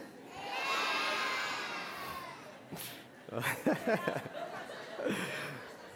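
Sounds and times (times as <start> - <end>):
kindergarten children shouting amen together: 0.3 - 2.5
speech: 2.7 - 5.7
laughter: 2.8 - 5.9.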